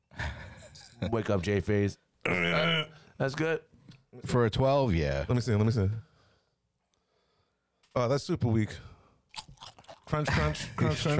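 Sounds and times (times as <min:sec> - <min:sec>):
speech: 0:01.0 - 0:06.1, 0:08.0 - 0:08.9, 0:10.1 - 0:11.1
crisp crunches of a spicy snack being bitten: 0:09.3 - 0:10.2.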